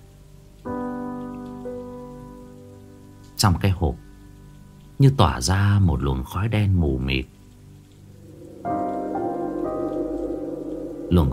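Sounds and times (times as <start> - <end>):
rain falling outside: 0.0 - 11.3
speech: 3.4 - 4.0, 5.0 - 7.4, 11.1 - 11.3
sustained tonal chords: 8.1 - 11.3.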